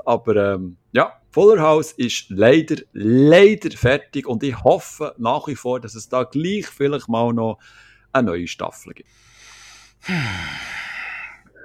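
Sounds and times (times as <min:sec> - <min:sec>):
speech: 0:00.0 - 0:09.3, 0:10.0 - 0:10.8
loud huffing breath through the nose: 0:09.2 - 0:11.6.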